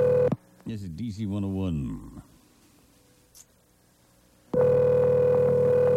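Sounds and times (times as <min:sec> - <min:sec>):
speech: 0:00.7 - 0:02.3
telephone electronic ringback tone on an outgoing call: 0:04.6 - 0:05.9.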